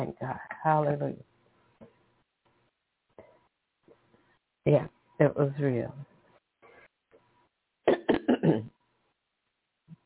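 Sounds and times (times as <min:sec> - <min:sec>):
speech: 0:00.0 - 0:01.3, 0:04.7 - 0:06.1
person clearing throat: 0:07.9 - 0:08.7.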